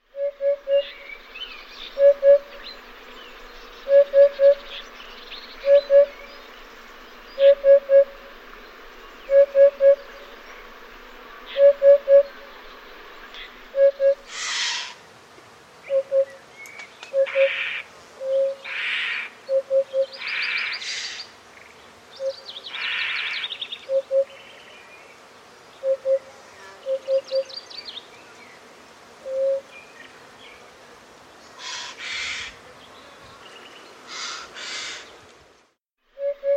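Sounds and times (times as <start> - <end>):
hoopoe calling: 0.0 - 15.0, 15.9 - 16.4, 17.1 - 20.3, 22.2 - 24.4, 25.8 - 26.3, 26.9 - 27.5, 29.2 - 29.7, 36.2 - 36.5.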